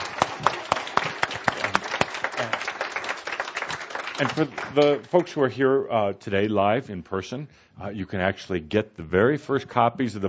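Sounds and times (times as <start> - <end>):
audience applauding: 0.0 - 5.4
speech: 4.2 - 10.2.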